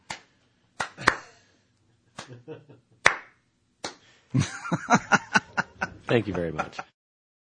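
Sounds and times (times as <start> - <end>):
hand clapping: 0.0 - 1.3, 2.2 - 2.4, 3.0 - 4.1
laughter: 2.2 - 2.8, 4.4 - 6.9
speech: 2.3 - 3.3, 4.3 - 5.2, 6.1 - 6.9.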